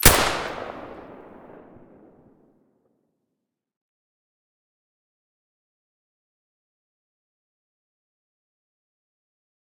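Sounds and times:
SV98 rifle shot with silencer: 0.0s - 2.2s.

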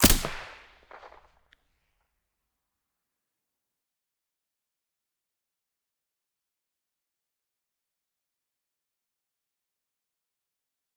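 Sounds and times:
VSS silenced weapon shots: 0.0s - 1.2s.

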